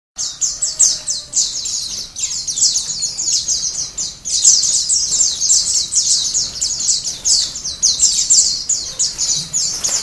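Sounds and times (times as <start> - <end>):
white-eye song of bright downslurred chirps: 0.2 - 10.0.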